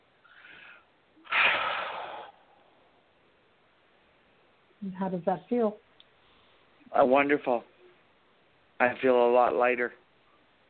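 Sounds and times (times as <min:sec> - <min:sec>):
person taking a deep breath during a guided affirmation session: 0:00.3 - 0:02.6
speech: 0:04.8 - 0:05.9, 0:06.9 - 0:07.7, 0:08.8 - 0:10.0.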